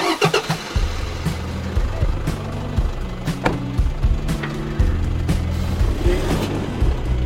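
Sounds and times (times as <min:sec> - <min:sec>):
4x4 engine starting and idling: 0:00.0 - 0:07.2.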